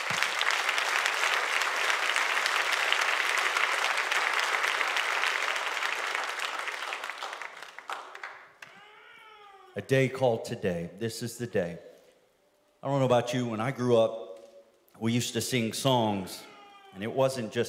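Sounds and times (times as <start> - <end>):
large crowd clapping in praise: 0.0 - 9.0
speech: 9.8 - 11.9, 12.8 - 14.2, 15.0 - 17.6.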